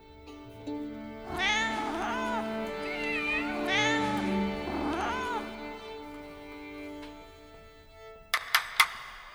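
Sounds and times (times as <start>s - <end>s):
laughter: 0.0s - 8.2s
several cats meowing: 0.5s - 8.3s
sharp clicks: 2.4s - 9.3s.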